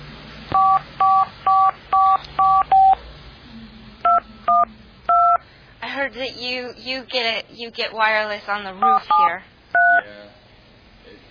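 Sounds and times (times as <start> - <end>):
dial-up modem touch-tone dialing beeps: 0.6 - 3.0, 4.1 - 5.4, 8.8 - 10.0
speech: 6.1 - 9.5.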